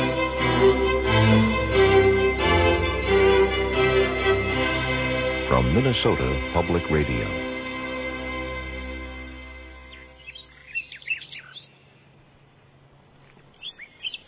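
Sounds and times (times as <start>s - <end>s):
sustained low musical tone: 0.0s - 10.7s
speech: 5.6s - 7.4s
birds chirping and tweeting in springtime: 6.4s - 12.5s, 13.2s - 14.2s.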